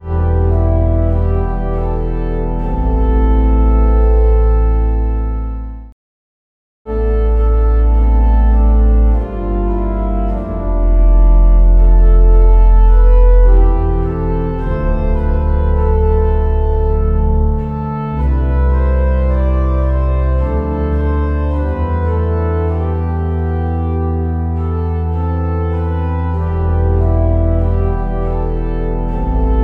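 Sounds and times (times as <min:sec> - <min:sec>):
organ: 0:00.0 - 0:05.9, 0:06.9 - 0:29.6.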